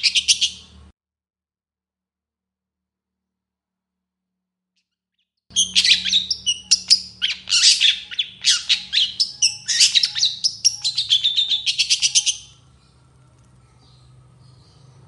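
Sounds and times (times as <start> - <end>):
long-tailed shrike singing chatters and whistled notes in the morning: 5.5 - 15.0
low hum: 5.6 - 15.0.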